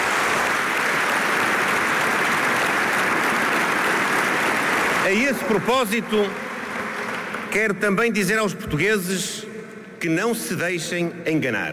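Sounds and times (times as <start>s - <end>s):
large party congress audience applauding in Portugal: 0.0s - 7.8s
speech: 5.1s - 6.4s, 7.5s - 11.7s.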